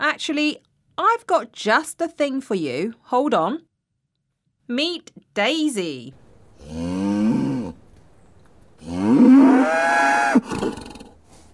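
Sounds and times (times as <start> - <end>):
speech: 0.2 - 3.7, 4.7 - 7.0
cow grunting: 6.6 - 7.8, 8.8 - 11.3
cow mooing: 6.6 - 7.8, 8.8 - 10.9.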